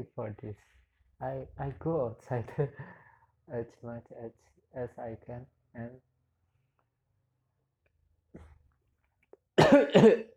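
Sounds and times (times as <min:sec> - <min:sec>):
speech: 0:00.0 - 0:06.1, 0:09.6 - 0:10.3
person coughing: 0:09.6 - 0:10.3.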